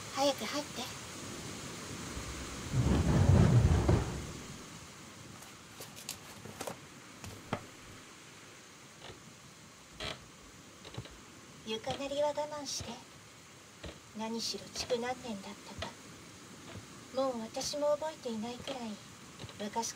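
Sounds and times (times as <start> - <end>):
steady wind-blown rain: 0.0 - 19.9
speech: 0.2 - 1.0, 11.7 - 13.1, 14.2 - 15.8, 17.2 - 19.9
deep roll of thunder: 1.2 - 4.9.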